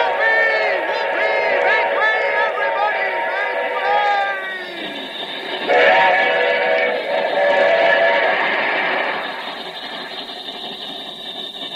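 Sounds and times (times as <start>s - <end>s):
runaway locomotive running on tracks: 0.0s - 11.7s
sustained whistle-like tones of a train: 0.0s - 11.7s.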